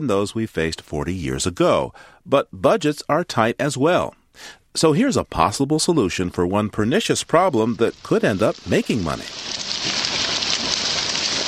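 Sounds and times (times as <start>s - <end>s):
speech: 0.0s - 9.6s
Asian carp leaping and splashing in a river: 7.9s - 11.4s.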